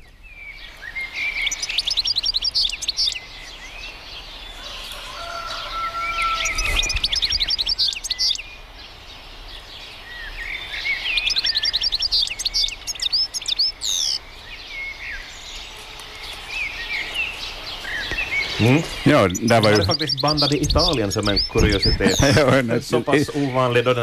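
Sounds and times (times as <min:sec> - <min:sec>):
goldfinch singing in Italy: 0:00.0 - 0:24.0
rooster crowing: 0:04.5 - 0:07.2
laughter: 0:18.6 - 0:24.0
speech: 0:18.6 - 0:24.0.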